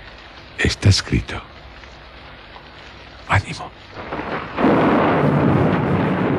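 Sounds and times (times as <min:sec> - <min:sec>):
rain on a stormy November night: 0:00.0 - 0:06.3
speech: 0:00.6 - 0:01.5, 0:03.3 - 0:04.8
deep thunder rumble on a stormy November night: 0:03.3 - 0:06.3.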